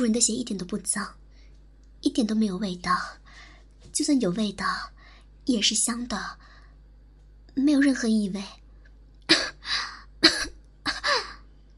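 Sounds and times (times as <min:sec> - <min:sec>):
speech: 0:00.0 - 0:01.2, 0:02.0 - 0:06.5, 0:07.6 - 0:08.6
forceful coughs: 0:09.3 - 0:09.6, 0:10.2 - 0:11.4.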